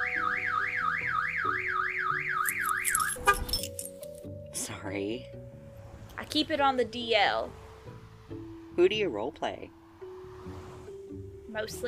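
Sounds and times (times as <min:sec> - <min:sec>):
car alarm wailing in a rising-and-falling siren pattern: 0:00.0 - 0:03.5
speech: 0:04.9 - 0:05.6, 0:06.2 - 0:07.6, 0:08.8 - 0:09.8, 0:11.6 - 0:11.8.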